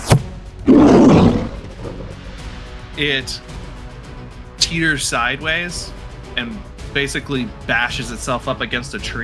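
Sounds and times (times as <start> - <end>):
sharp thud: 0.0 - 2.2
deep guttural beast roar trailing into a lower growl: 0.7 - 2.2
speech: 3.0 - 3.6, 4.7 - 9.2.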